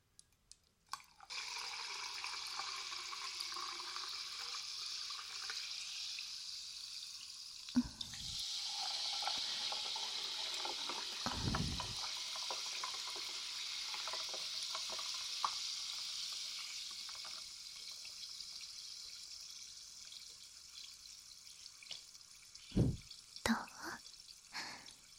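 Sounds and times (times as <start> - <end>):
carbonated drink poured and fizzing: 0.9 - 25.1
low thuds: 22.8 - 23.0.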